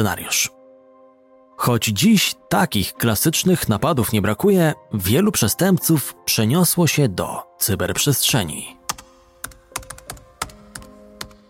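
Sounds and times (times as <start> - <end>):
speech: 0.0 - 0.6, 1.6 - 8.8
typing on a computer keyboard: 8.9 - 11.4.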